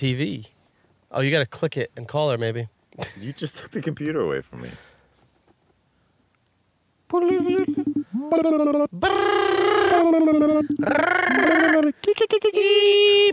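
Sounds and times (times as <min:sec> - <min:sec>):
speech: 0:00.0 - 0:04.9, 0:07.1 - 0:13.3
voice imitating a ringing phone with sing-song bursts: 0:07.1 - 0:12.0.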